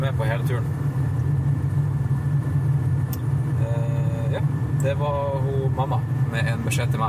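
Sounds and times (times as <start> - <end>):
car road and engine noise inside the cabin: 0.0 - 7.0
speech: 0.1 - 1.0, 4.8 - 7.0.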